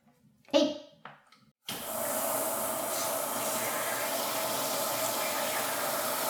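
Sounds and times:
shower spraying hot water into container: 0:01.7 - 0:06.2.

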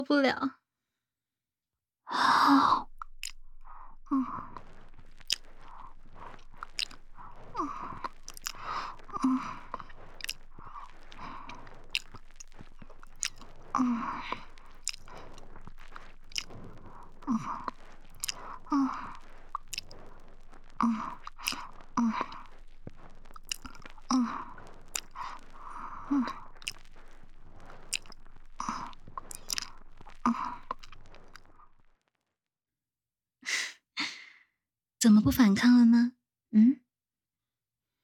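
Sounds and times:
speech: 0:00.0 - 0:00.6, 0:02.1 - 0:02.9, 0:04.1 - 0:04.5, 0:13.8 - 0:14.4, 0:35.3 - 0:36.7
breathy sighs: 0:02.1 - 0:31.6
wet mouth clicks and smacks from nibbling an ear: 0:02.6 - 0:31.7.

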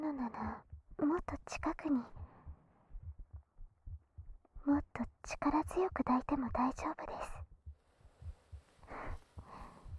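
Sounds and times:
heartbeat: 0:00.0 - 0:09.9
speech: 0:00.2 - 0:02.2, 0:04.7 - 0:07.4
slow breaths: 0:08.3 - 0:09.9.

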